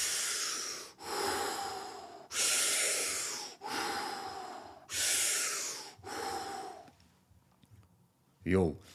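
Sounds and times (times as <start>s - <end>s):
deep forceful circular breathing: 0.0s - 7.0s
speech: 8.4s - 8.9s.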